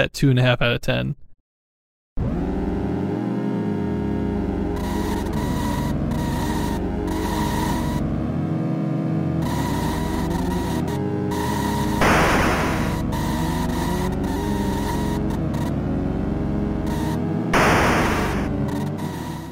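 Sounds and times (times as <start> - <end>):
speech: 0.0 - 1.2
buzzy electronic car engine tones from a car racing video game: 2.2 - 19.5
hissy static bursts: 12.0 - 13.0, 17.6 - 18.5.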